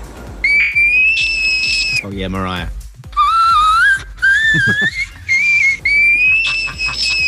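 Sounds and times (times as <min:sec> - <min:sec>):
low rhythmic thumps: 0:00.0 - 0:07.2
frog from the Netherlands giving a high whistling call: 0:00.4 - 0:02.0, 0:03.2 - 0:07.2
speech: 0:02.0 - 0:02.8, 0:04.5 - 0:05.1
laughter: 0:04.4 - 0:07.2.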